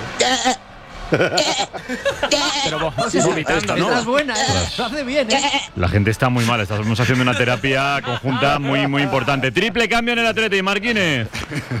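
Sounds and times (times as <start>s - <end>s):
speech: 0.3s - 11.7s
laughter: 0.9s - 10.0s, 11.3s - 11.7s
goat bleating on a city bus: 1.4s - 1.7s, 2.3s - 2.8s, 3.9s - 5.8s.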